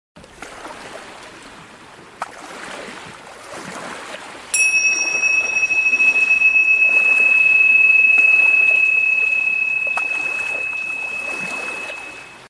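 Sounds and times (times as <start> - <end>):
tingsha chimes: 4.6 - 12.4.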